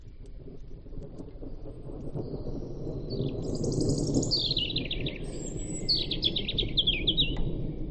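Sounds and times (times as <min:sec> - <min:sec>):
European robin singing: 0:02.6 - 0:07.6.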